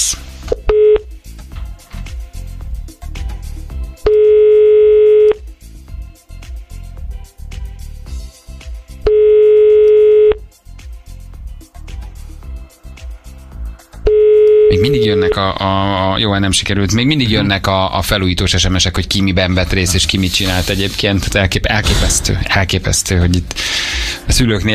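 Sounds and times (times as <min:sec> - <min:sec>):
telephone ringing tone on a line while calling a listener: 0:00.5 - 0:01.1, 0:04.0 - 0:05.4, 0:09.0 - 0:10.4, 0:14.0 - 0:15.4
speech: 0:15.1 - 0:24.7.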